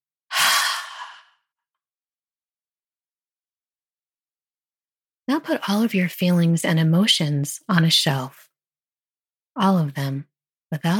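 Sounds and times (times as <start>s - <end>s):
open-mouthed exhale during a guided meditation: 0.3s - 1.5s
speech: 5.3s - 8.5s, 9.6s - 10.9s.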